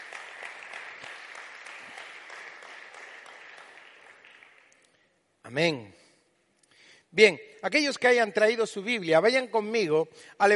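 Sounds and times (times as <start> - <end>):
audience applauding: 0.0 - 4.9
speech: 5.5 - 6.0, 7.1 - 10.5.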